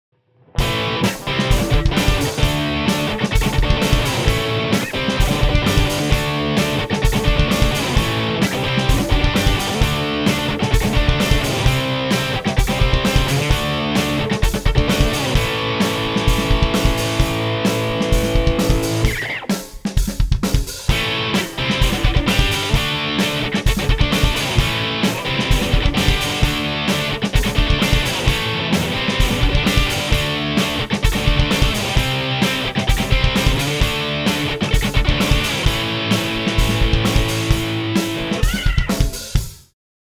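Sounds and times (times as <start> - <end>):
GNI power distortion effect: 0.1 - 19.8, 20.4 - 39.6.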